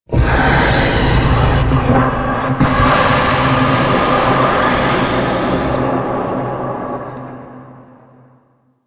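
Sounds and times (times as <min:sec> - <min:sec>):
breathy vocal: 0:00.0 - 0:06.5.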